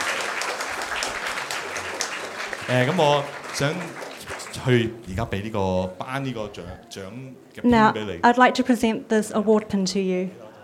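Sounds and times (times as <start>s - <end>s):
congregation applauding long-serving award recipients: 0.0s - 5.4s
speech: 2.7s - 10.4s.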